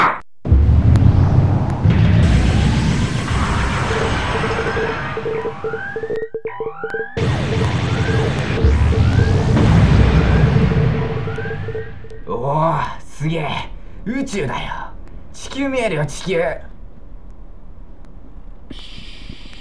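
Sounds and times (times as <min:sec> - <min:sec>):
rocket launching from a clearing in a video game: 0:00.5 - 0:06.0, 0:07.2 - 0:12.3
speech: 0:13.2 - 0:14.8, 0:15.6 - 0:16.7.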